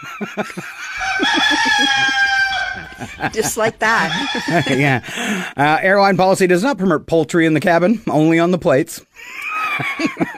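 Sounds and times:
laughter: 0.0 - 5.6, 9.2 - 10.3
speech: 0.1 - 10.3
rooster clucking: 0.7 - 5.5
rooster crowing: 0.8 - 5.1.

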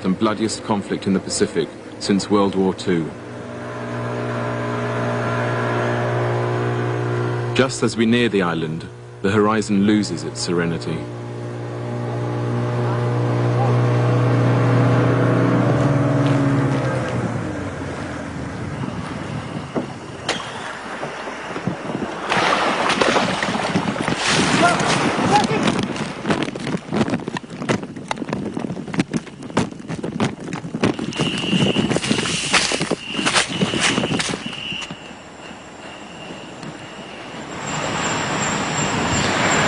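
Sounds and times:
approaching motorboat engine droning at sea near Bougainville island: 0.0 - 39.6
gusty wind rumble at sea: 0.0 - 39.6
speech: 0.1 - 3.2, 7.6 - 11.2
water splashing and slapping against motorboat hull: 19.8 - 34.5.

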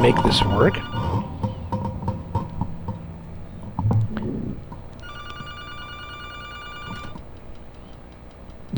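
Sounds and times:
speech: 0.0 - 1.3
radio station studio telephone ringing with an incoming call: 0.0 - 1.8, 5.0 - 7.4
handling noise: 0.0 - 8.7.

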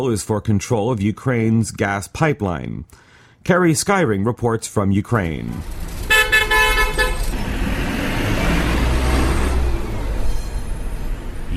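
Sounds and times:
speech: 0.0 - 5.9
old buses' heavy engines rumbling on a city street: 5.2 - 11.5
road noise: 5.2 - 11.5
vehicle horn blaring: 6.0 - 7.4.

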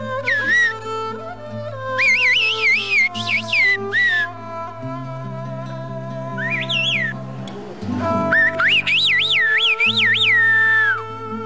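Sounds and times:
sliding warbling whistles of a whistled conversation in a village: 0.2 - 0.8, 1.9 - 4.3, 6.4 - 7.2, 8.0 - 11.1.

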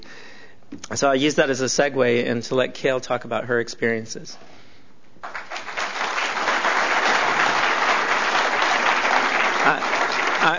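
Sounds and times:
speech: 0.9 - 4.6
audience applause: 5.2 - 10.5.

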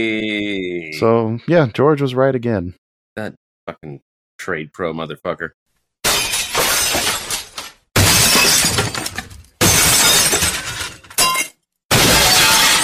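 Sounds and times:
speech: 0.0 - 5.6
window glass shattering: 6.0 - 12.8.

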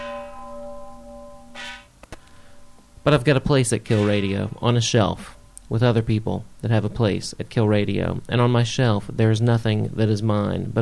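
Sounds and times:
sharp metal clanks: 0.0 - 2.0, 3.8 - 4.6
gong cymbals ringing: 0.0 - 3.0
speech: 3.1 - 10.8.

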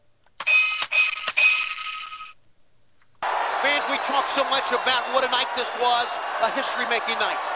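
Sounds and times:
wrestling ring bell ringing: 0.5 - 2.4
speech: 4.0 - 7.5.

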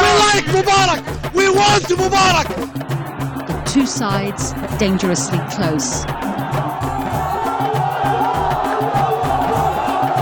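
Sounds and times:
dense protest crowd in Egypt roaring and shouting: 0.0 - 10.1
speech: 0.6 - 2.9, 3.7 - 6.4
protest crowd rhythmic chanting: 2.4 - 10.1.

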